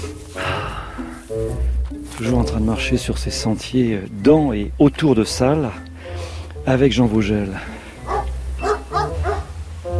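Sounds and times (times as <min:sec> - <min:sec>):
speech: 0:01.3 - 0:05.9, 0:06.6 - 0:07.8
dog barking on a walking trail beside freshly cut hay fields: 0:08.0 - 0:09.5.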